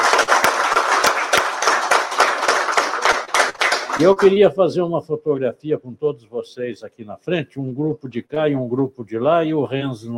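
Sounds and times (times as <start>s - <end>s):
audience clapping: 0.0s - 4.4s
speech: 4.0s - 10.1s.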